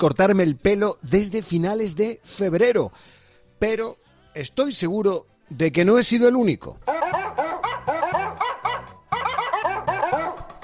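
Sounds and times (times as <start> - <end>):
speech: 0.0 - 7.0
dog barks and yips pitched into a bouncy game tune: 6.8 - 10.5.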